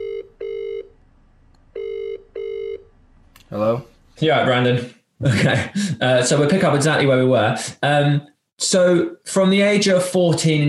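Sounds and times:
telephone ringing on the line after a call is dialed: 0:00.0 - 0:00.9, 0:01.7 - 0:02.9
speech: 0:03.5 - 0:10.6.

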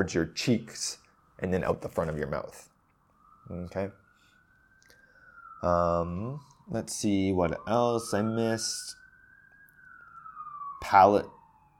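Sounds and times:
speech: 0:00.0 - 0:02.7, 0:03.5 - 0:04.0, 0:05.6 - 0:09.0, 0:10.8 - 0:11.4
police siren sounding outside: 0:00.0 - 0:11.7.

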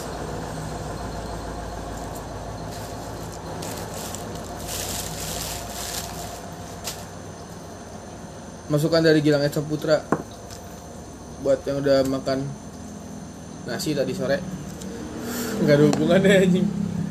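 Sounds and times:
large truck engine rumbling as it passes: 0:00.0 - 0:07.9, 0:13.0 - 0:17.0
speech: 0:08.7 - 0:10.2, 0:11.4 - 0:12.6, 0:13.6 - 0:14.6, 0:15.6 - 0:16.8.

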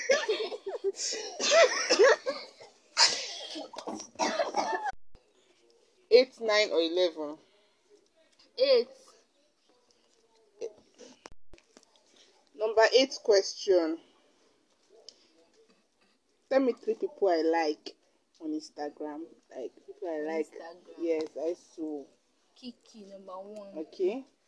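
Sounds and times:
people laughing: 0:00.0 - 0:02.6
several people coughing: 0:00.0 - 0:05.0
speech: 0:06.5 - 0:07.5, 0:08.6 - 0:09.0, 0:12.8 - 0:14.1, 0:16.5 - 0:24.4.

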